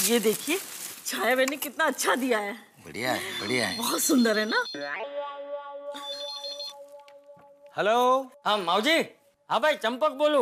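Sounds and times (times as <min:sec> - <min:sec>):
speech: 0:00.0 - 0:06.1, 0:07.8 - 0:10.3
phone ringtone: 0:03.1 - 0:05.1, 0:05.9 - 0:07.6
brighter trilling ringtone melody: 0:03.1 - 0:08.1.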